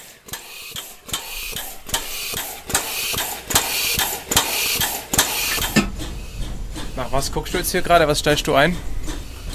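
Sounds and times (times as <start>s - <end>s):
constant hiss of steam: 0.0s - 7.5s
steam locomotive air pump clacking: 0.0s - 9.5s
speech: 7.1s - 9.0s.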